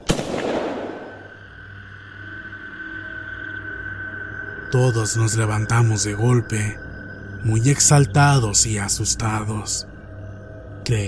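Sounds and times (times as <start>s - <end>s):
gunshot from a firearm at an improvised camp: 0.0s - 1.2s
high-pitched ringing tone: 1.0s - 11.0s
speech: 4.7s - 6.8s, 7.4s - 9.9s, 10.9s - 11.0s.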